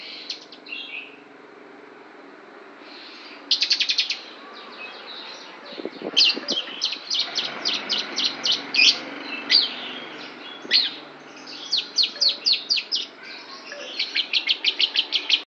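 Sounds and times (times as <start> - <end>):
lovebird chirping in imitation of Javan prinia song: 3.0 - 15.5.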